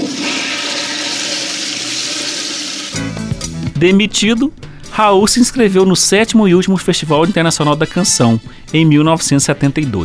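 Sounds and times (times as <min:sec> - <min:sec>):
toilet flushing: 0:00.0 - 0:03.1
speech: 0:03.8 - 0:10.0.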